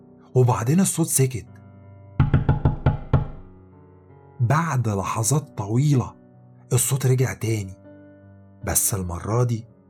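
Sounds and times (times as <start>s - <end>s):
speech: 0.4s - 1.6s, 4.5s - 7.8s, 8.6s - 9.7s
knocking on a wooden door: 2.2s - 3.6s.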